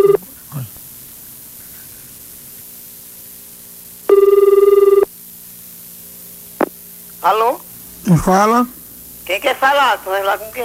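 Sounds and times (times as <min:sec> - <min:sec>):
static hiss: 0:00.0 - 0:10.6
telephone ringing during a prank call: 0:04.1 - 0:05.1
speech: 0:07.2 - 0:10.6.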